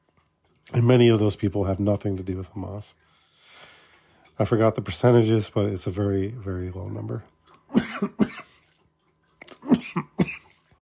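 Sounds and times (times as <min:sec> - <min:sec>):
speech: 0:00.7 - 0:03.2, 0:04.4 - 0:08.4
harsh coughing fit: 0:07.7 - 0:08.6, 0:09.5 - 0:10.6.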